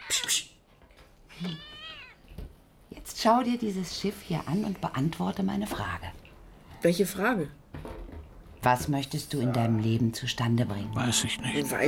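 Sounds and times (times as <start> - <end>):
cat meowing: 1.3 - 2.3, 11.2 - 11.8
speech: 1.4 - 1.7, 3.2 - 6.2, 6.8 - 7.6, 8.6 - 11.8.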